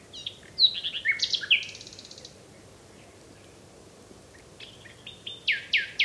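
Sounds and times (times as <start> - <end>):
Common Nightingale singing at dawn in Kent, England: 0.0 - 3.6, 4.3 - 6.0.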